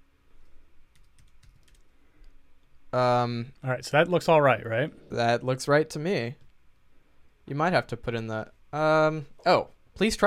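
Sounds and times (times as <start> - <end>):
low steady hum: 0.0 - 10.2
typing a postal code on a computer keyboard: 0.9 - 2.4
speech: 2.9 - 6.4, 7.5 - 10.2.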